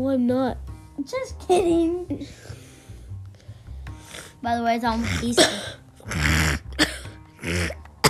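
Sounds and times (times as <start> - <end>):
speech: 0.0 - 2.6, 4.4 - 7.8
deliberate forced throaty coughs: 5.0 - 8.0.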